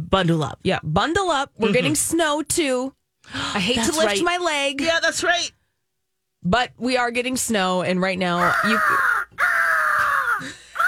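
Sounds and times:
speech: 0.1 - 5.6, 6.4 - 9.1
eagle screeching: 8.4 - 10.8.

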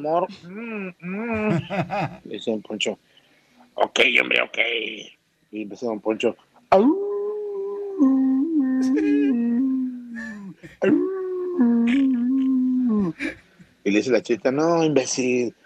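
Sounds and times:
speech: 0.0 - 3.1, 3.8 - 7.1, 8.0 - 8.2, 10.7 - 12.2, 13.1 - 15.6
person imitating a coyote howl: 0.3 - 1.8, 6.7 - 13.3
laughter: 1.1 - 2.3, 8.8 - 9.5.

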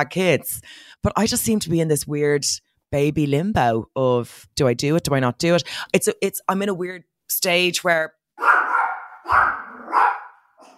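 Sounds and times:
speech: 0.0 - 8.5
small 7-pound dog barking: 8.4 - 10.7.

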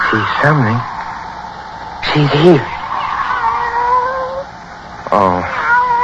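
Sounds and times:
steady humming tonal drone: 0.0 - 6.0
speech: 0.2 - 0.9, 2.1 - 2.8, 5.1 - 5.6.

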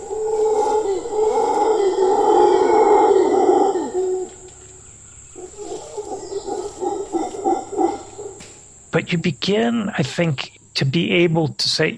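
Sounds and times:
howler monkeys roaring and grunting: 0.0 - 9.0
speech: 9.0 - 11.9.

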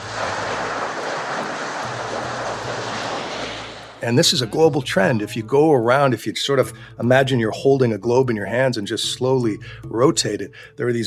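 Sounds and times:
raging water surging onto a street: 0.0 - 4.2
speech: 4.0 - 11.0.

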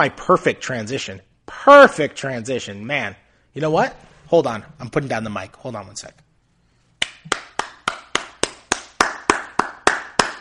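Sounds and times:
speech: 0.0 - 6.2
single person clapping hands: 7.0 - 10.3.

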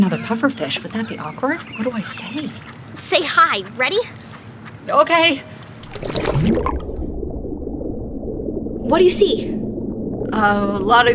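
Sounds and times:
speech: 0.0 - 4.2, 4.8 - 6.9, 8.9 - 9.6, 10.4 - 11.1
bag being lowered into dirty water full of green stuff: 5.8 - 7.0
low steady underwater murmur and gurgle: 5.8 - 11.1.

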